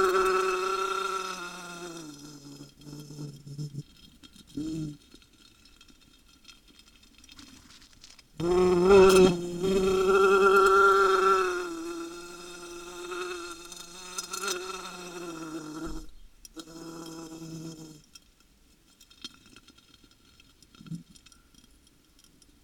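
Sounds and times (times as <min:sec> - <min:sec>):
wasp under glass buzzing: 0:00.0 - 0:03.8, 0:08.4 - 0:18.0.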